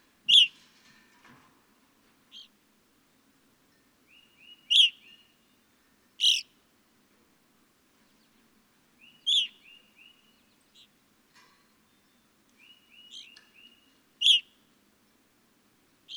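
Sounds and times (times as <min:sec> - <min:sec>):
evening grosbeak giving sharp ringing chirps: 0:04.1 - 0:05.3, 0:06.2 - 0:06.4, 0:09.0 - 0:10.2, 0:12.6 - 0:14.5.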